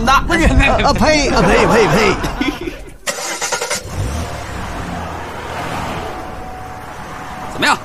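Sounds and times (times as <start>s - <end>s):
speech: 0.0s - 2.6s, 7.6s - 7.8s
laughter: 0.4s - 3.0s
hearse car engine low rumble: 1.1s - 7.8s
hearse car engine cranking: 2.8s - 7.8s.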